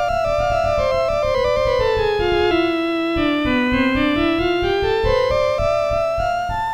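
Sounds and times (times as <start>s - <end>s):
violin harmonic component sampled on a keyboard: 0.2s - 6.6s.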